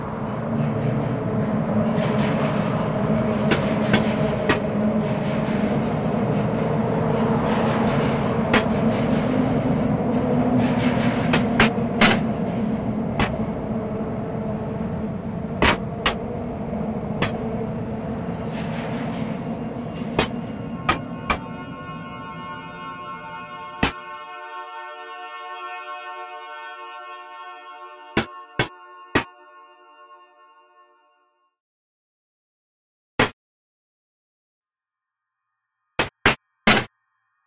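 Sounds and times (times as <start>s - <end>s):
train wheels clacking and squealing metallically: 0.0s - 24.1s
train rumbling past: 0.0s - 31.2s.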